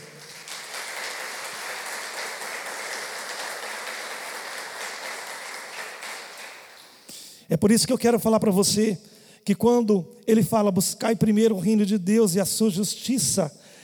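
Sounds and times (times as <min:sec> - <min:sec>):
applause from a large crowd: 0:00.0 - 0:07.0
speech: 0:07.5 - 0:13.8.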